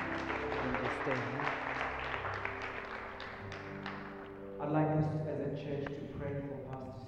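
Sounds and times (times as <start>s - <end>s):
congregation clapping hands in applause: 0.0s - 4.4s
speech: 1.0s - 1.6s, 4.6s - 7.0s.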